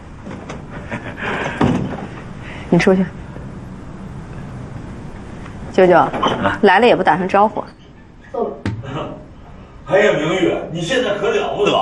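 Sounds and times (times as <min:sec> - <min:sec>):
door closing thud: 0:01.6 - 0:02.0
speech: 0:02.7 - 0:03.2, 0:05.8 - 0:08.6, 0:09.9 - 0:11.8.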